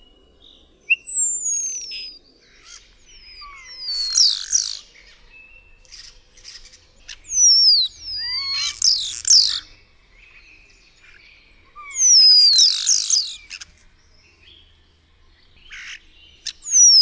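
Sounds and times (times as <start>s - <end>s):
common starling whistling: 0.9s - 4.9s, 7.3s - 9.7s, 11.8s - 13.7s, 16.5s - 16.9s.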